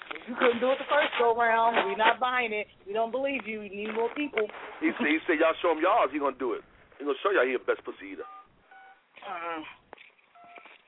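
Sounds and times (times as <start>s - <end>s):
speech: 0.3s - 8.4s, 9.2s - 9.8s
telephone keypad dialing tones: 10.4s - 10.7s.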